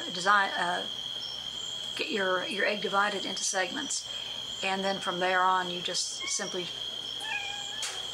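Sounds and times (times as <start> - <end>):
speech: 0.2 - 1.0, 2.0 - 6.9
cat meowing: 7.2 - 8.0.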